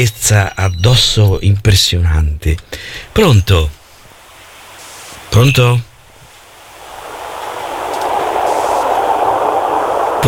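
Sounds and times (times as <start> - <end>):
speech: 0.0 - 3.8, 5.3 - 5.9
passing train roaring: 6.4 - 10.2.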